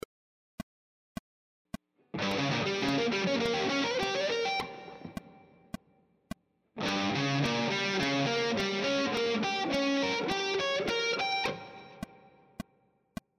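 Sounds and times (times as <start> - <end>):
guitar playing triad arpeggio sequences: 2.2 - 5.4, 6.8 - 12.2.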